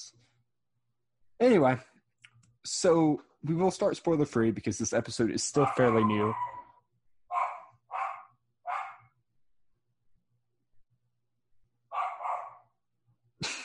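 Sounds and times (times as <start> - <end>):
speech: 1.4 - 1.9, 2.6 - 6.6
dog barking: 5.6 - 6.7, 7.3 - 9.1, 11.9 - 12.7.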